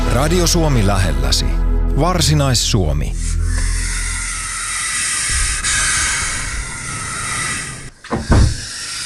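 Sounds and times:
speech: 0.2s - 3.8s
European adder hissing: 3.1s - 9.0s.

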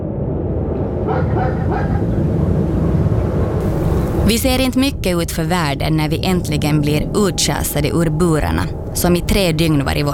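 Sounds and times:
loud low mechanical rumble: 0.0s - 10.1s
dog barking and whimpering: 1.1s - 2.1s
speech: 4.3s - 10.1s.

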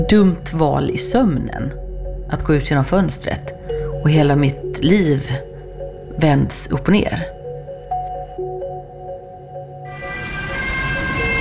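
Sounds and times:
speech: 0.0s - 5.5s, 6.2s - 7.4s
ambulance siren wailing in alternating tones: 9.8s - 11.4s.

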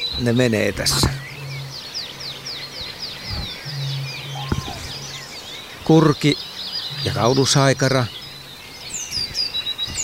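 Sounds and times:
speech: 0.2s - 1.2s, 5.9s - 8.2s
tit singing in the yard: 4.2s - 5.2s.

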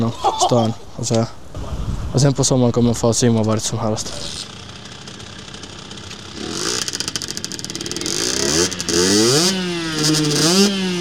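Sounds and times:
speech: 0.0s - 4.5s, 10.0s - 10.7s
small moped engine revving: 4.0s - 10.9s.

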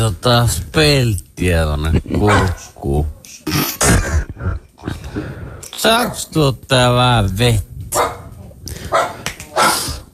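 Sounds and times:
speech: 0.0s - 4.5s, 5.8s - 8.1s
dog barking: 2.3s - 2.6s, 8.0s - 10.0s.

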